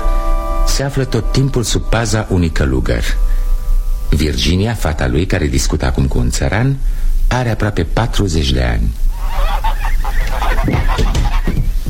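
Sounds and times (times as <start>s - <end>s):
speech: 0.8s - 3.4s, 4.1s - 9.7s, 10.6s - 11.1s
flock of geese honking: 9.1s - 11.8s.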